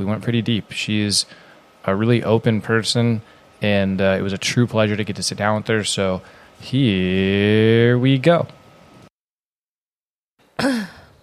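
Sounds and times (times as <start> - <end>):
speech: 0.0 - 8.6
single loud cough: 10.6 - 11.1.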